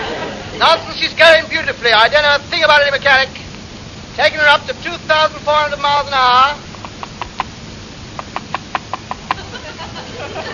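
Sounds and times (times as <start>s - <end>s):
laughter: 0.0s - 1.0s, 8.9s - 10.5s
speech: 0.6s - 3.4s, 4.2s - 6.7s
knocking on a plane windscreen: 8.2s - 9.4s.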